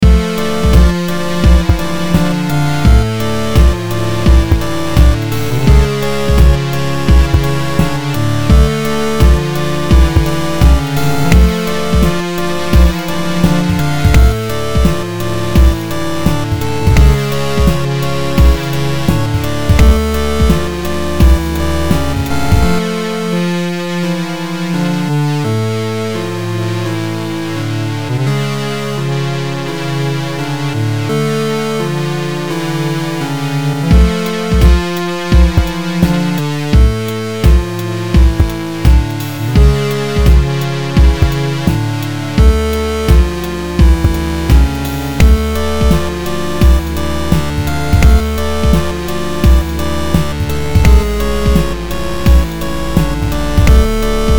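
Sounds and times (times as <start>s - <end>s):
eight-bit dungeon game music: 0.0s - 54.3s.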